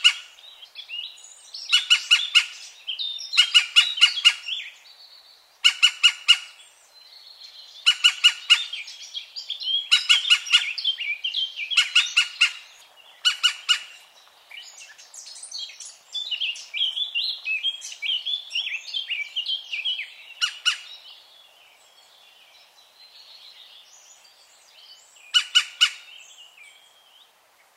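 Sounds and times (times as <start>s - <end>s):
European green woodpecker calling: 0.0s - 0.4s, 1.6s - 4.7s, 5.6s - 6.6s, 7.8s - 8.9s, 9.7s - 14.1s, 15.6s - 21.0s, 25.3s - 26.2s
songbird warbling: 0.0s - 4.9s, 5.6s - 21.2s, 24.7s - 27.2s.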